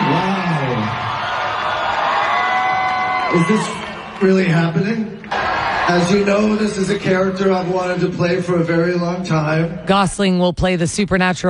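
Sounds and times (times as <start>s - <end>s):
large convention crowd screaming and cheering: 0.0s - 8.1s
speech: 3.3s - 11.4s.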